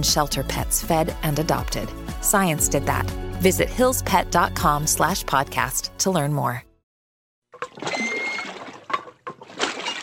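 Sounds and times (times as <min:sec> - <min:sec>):
speech: 0:00.0 - 0:06.7
water lapping around a rowboat on a cold windy pond in Vermont: 0:07.6 - 0:10.0.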